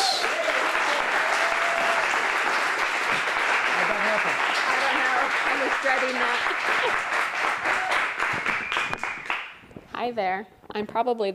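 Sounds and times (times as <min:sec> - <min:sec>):
crowd clapping in a room: 0:00.0 - 0:09.6
speech: 0:10.0 - 0:11.3.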